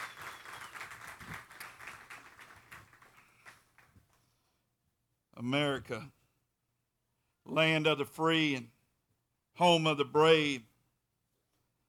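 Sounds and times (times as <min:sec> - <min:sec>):
congregation applauding with many hands clapping: 0:00.0 - 0:04.2
speech: 0:05.4 - 0:06.2, 0:07.5 - 0:08.8, 0:09.6 - 0:10.7.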